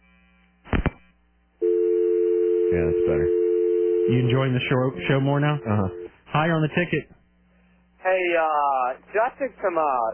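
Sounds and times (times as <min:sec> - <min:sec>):
steady loud telephone dial tone: 0:01.6 - 0:04.2
speech: 0:02.7 - 0:03.4, 0:04.0 - 0:07.2, 0:08.0 - 0:10.1.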